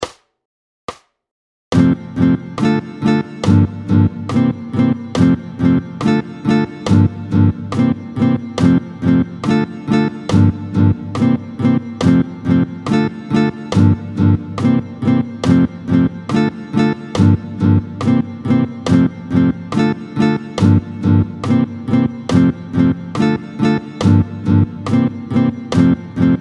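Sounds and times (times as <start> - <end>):
fast guitar playing in two-two time at tempo 140: 1.8 - 26.3.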